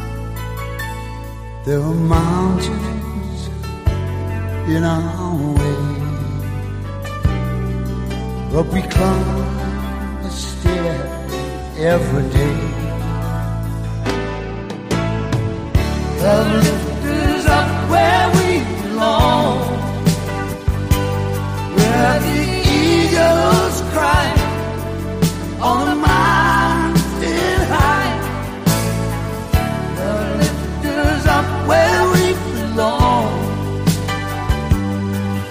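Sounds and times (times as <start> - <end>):
ballad duet from a film soundtrack with bass and backing instruments: 0.0 - 35.4.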